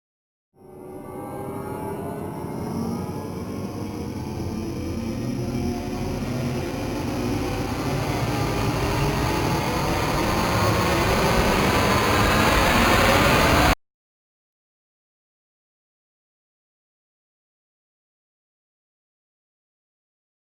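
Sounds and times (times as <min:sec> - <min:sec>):
rising sound effect: 0:00.6 - 0:13.8.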